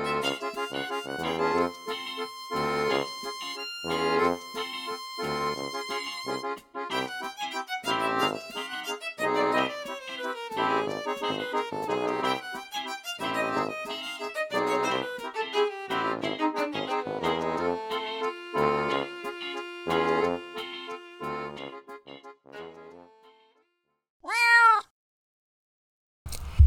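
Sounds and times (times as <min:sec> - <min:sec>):
melodic music: 0:00.0 - 0:23.3
cat meowing: 0:24.2 - 0:24.9.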